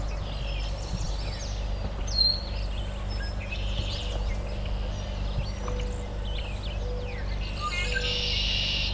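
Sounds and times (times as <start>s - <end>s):
busy outdoor chorus of other birds: 0.0s - 8.9s
steady low rumble of wind or traffic: 0.0s - 8.9s
willow flycatcher singing fitz-bew: 0.0s - 8.9s.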